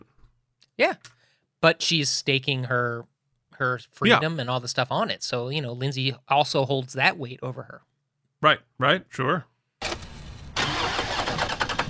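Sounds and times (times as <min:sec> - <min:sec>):
speech: 0:00.8 - 0:10.0
car engine cranking and failing to start: 0:09.8 - 0:11.8.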